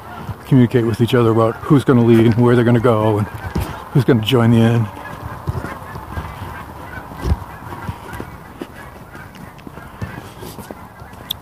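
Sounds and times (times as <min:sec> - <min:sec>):
flock of geese honking in flight: 0:00.0 - 0:11.4
speech: 0:00.5 - 0:05.0.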